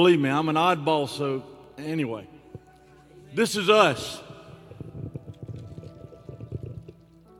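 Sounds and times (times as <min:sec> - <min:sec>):
speech: 0:00.0 - 0:02.4, 0:03.3 - 0:04.2
water pouring into a small container: 0:04.0 - 0:07.3.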